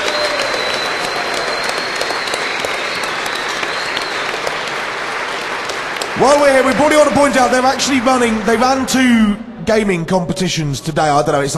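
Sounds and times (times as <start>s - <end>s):
audience applause: 0.0s - 9.4s
speech: 6.2s - 11.5s.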